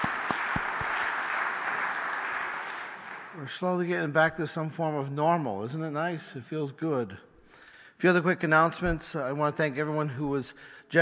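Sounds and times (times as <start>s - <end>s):
room full of people clapping at an Easter service: 0.0s - 3.4s
speech: 3.4s - 7.3s, 8.0s - 11.0s.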